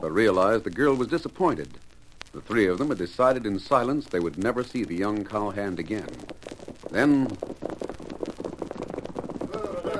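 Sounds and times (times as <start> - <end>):
speech: 0.0 - 7.5
several horses' hooves on hard ground outside a ranch house: 4.5 - 9.9.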